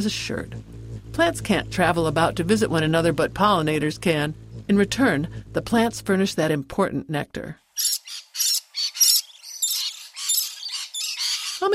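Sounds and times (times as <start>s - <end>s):
speech: 0.0s - 8.2s, 11.6s - 11.7s
rainbow lorikeets screeching while feeding on eucalyptus nectar: 7.8s - 11.7s.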